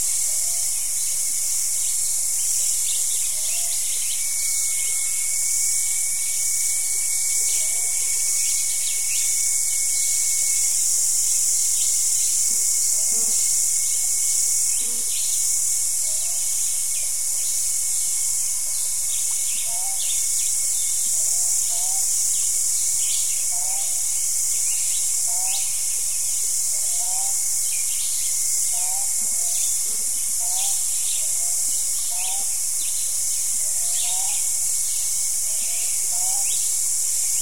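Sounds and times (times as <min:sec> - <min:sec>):
morning insects with high shrill pulsing drone: 0:00.0 - 0:37.4
thin continuous whine: 0:00.0 - 0:37.4.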